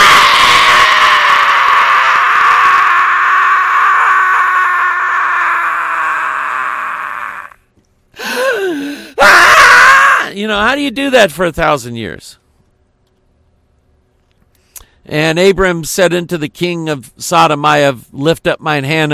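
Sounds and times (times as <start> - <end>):
long loud scream of someone falling: 0.0 - 7.6, 8.2 - 10.3
wavering wailing cry: 0.0 - 7.6, 9.2 - 10.3
speech: 10.5 - 12.4, 15.1 - 19.1.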